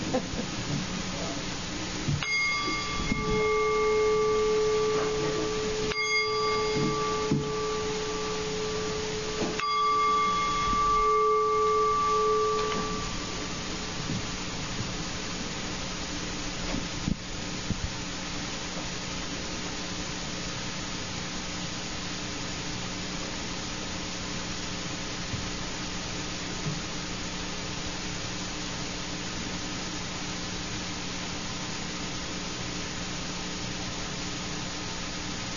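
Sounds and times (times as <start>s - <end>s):
soft hiss: 0.0s - 35.5s
small hand bell ringing: 2.2s - 14.6s.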